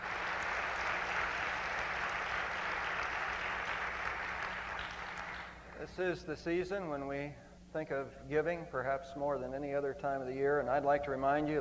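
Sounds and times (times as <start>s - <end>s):
room full of people applauding: 0.0s - 5.8s
speech: 5.8s - 11.5s.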